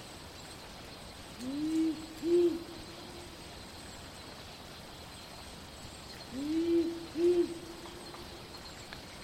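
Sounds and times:
soft steady background hiss: 0:00.0 - 0:09.2
Powerful Owl hooting at night in city bushland: 0:01.4 - 0:03.0, 0:06.3 - 0:08.0.

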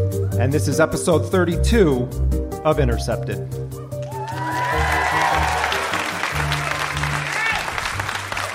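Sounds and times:
sustained low music tones: 0:00.0 - 0:08.5
speech: 0:00.4 - 0:03.7
audience cheers and whoops: 0:04.0 - 0:08.5
large indoor theatre audience applauding: 0:04.0 - 0:08.5.

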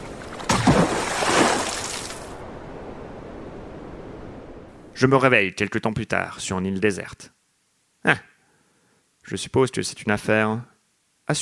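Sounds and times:
boat capsizing with a loud splash: 0:00.0 - 0:02.4
speech: 0:05.0 - 0:07.4, 0:08.0 - 0:08.3, 0:09.2 - 0:10.7.

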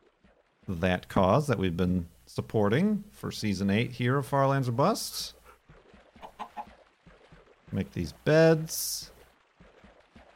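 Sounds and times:
speech: 0:00.7 - 0:05.4, 0:07.7 - 0:09.1
chicken clucking: 0:06.2 - 0:06.8.

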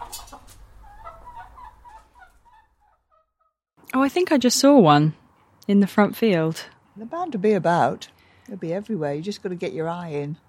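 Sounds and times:
several hens clucking and squawking: 0:00.0 - 0:03.3
speech: 0:03.9 - 0:10.4.

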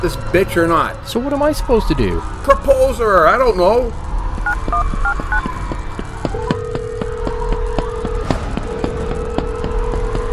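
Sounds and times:
speech: 0:00.0 - 0:04.1
low rumble: 0:00.0 - 0:10.3
phone keypad beeps: 0:04.5 - 0:05.4.

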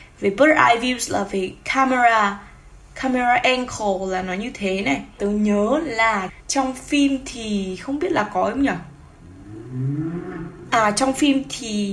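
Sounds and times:
speech: 0:00.2 - 0:08.9, 0:10.7 - 0:11.9
car driving past outside: 0:08.9 - 0:10.8.

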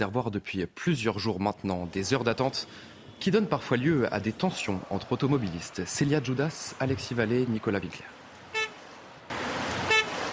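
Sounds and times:
speech: 0:00.0 - 0:08.2
steady traffic hum: 0:00.0 - 0:10.3
car horn toots in a queue: 0:08.5 - 0:08.8, 0:09.8 - 0:10.3.

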